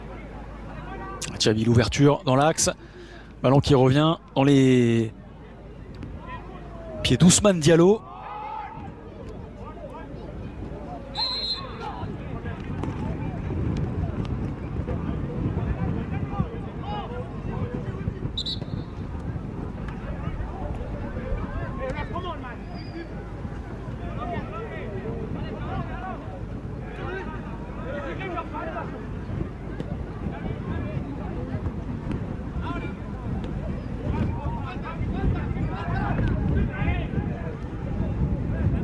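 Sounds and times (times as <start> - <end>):
speech: 1.2 - 5.2, 7.0 - 8.1
heavy wind buffeting the microphone: 11.8 - 38.8.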